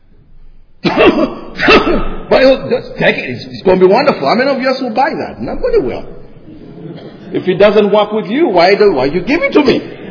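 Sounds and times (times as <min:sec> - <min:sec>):
acted sneeze-like blast: 0:00.8 - 0:02.3
person fake coughing harshly: 0:00.8 - 0:02.3
speech: 0:02.4 - 0:06.2, 0:07.3 - 0:10.0.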